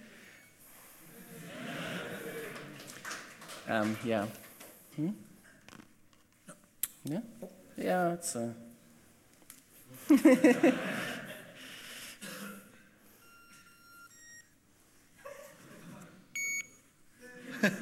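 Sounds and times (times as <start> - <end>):
laughter: 1.0 - 3.4, 9.9 - 11.9, 15.2 - 16.3, 17.2 - 17.8
speech: 3.7 - 4.4, 5.0 - 5.3, 7.0 - 8.6, 10.1 - 11.1
access card reader beeping: 16.4 - 16.7.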